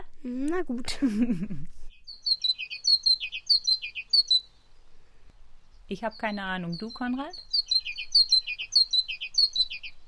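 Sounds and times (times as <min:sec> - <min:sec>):
speech: 0:00.2 - 0:01.8, 0:05.9 - 0:07.5
great tit song: 0:01.9 - 0:04.6, 0:05.9 - 0:10.0.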